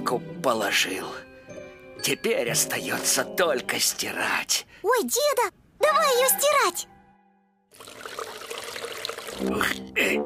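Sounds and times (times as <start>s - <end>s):
speech: 0.1s - 1.3s, 2.0s - 6.9s, 9.4s - 10.2s
water pouring into a washtub: 7.7s - 9.7s.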